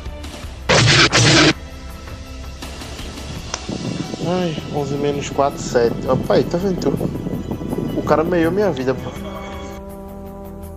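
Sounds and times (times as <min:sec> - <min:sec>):
loud harsh distorted gunshot blasts sound effect: 0:00.7 - 0:01.6
speech: 0:04.3 - 0:07.3, 0:08.1 - 0:09.3.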